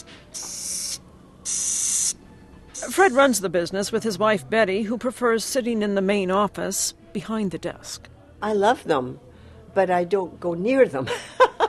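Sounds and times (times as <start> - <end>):
Madagascar hissing cockroach hissing as its stomach is rubbed: 0.0 - 2.2
speech: 2.9 - 11.4.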